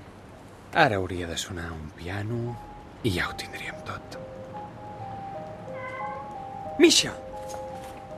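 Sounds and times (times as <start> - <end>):
soft steady hiss: 0.0 - 8.1
speech: 0.7 - 4.4, 6.8 - 7.6
cat meowing: 5.7 - 6.6.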